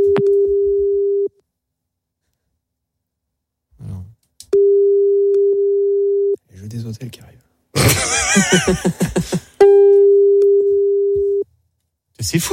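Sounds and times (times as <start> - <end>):
phone line tone during an unanswered call: 0.0 - 1.3, 4.6 - 6.4, 9.6 - 11.4
speech: 6.9 - 7.5, 8.4 - 9.5, 12.2 - 12.5
laughter: 7.8 - 9.6.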